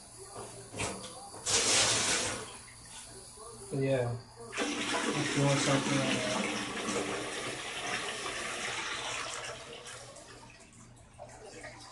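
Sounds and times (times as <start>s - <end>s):
toilet flushing: 1.4s - 2.9s, 4.5s - 11.8s
speech: 3.7s - 4.3s, 5.2s - 6.4s.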